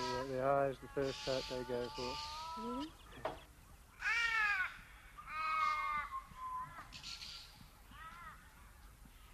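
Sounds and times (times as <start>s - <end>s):
crows cawing: 0.0s - 2.9s, 4.0s - 8.9s
faint bird chatter: 0.0s - 9.3s
speech: 0.4s - 3.4s.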